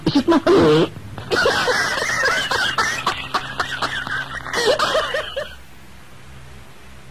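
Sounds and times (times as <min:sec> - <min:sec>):
speech: 0:00.1 - 0:01.9
loud hacking coughing: 0:01.3 - 0:05.6.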